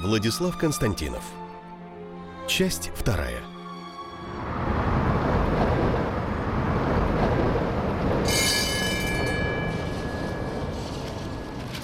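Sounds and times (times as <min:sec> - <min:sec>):
speech: 0:00.0 - 0:01.4, 0:02.5 - 0:03.5
tram rumbling along rails: 0:04.1 - 0:11.8
high metallic tram wheel squeal: 0:08.2 - 0:11.6.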